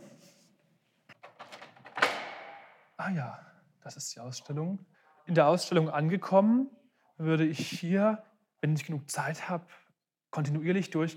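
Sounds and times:
museum door latch and handle rattling: 1.2s - 2.7s
speech: 3.0s - 11.1s.

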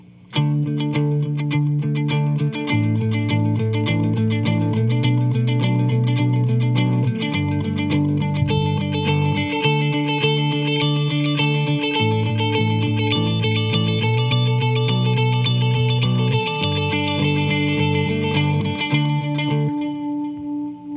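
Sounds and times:
distorted electric guitar with effects playing pedal tones over a chord progression: 0.0s - 20.9s.

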